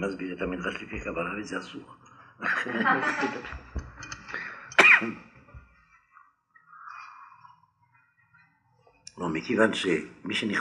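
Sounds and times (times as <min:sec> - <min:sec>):
speech: 0:00.0 - 0:03.8, 0:05.0 - 0:05.3, 0:09.2 - 0:10.6
laughter: 0:02.4 - 0:04.4
man clearing his throat: 0:04.8 - 0:05.3
man coughing harshly: 0:04.8 - 0:05.3.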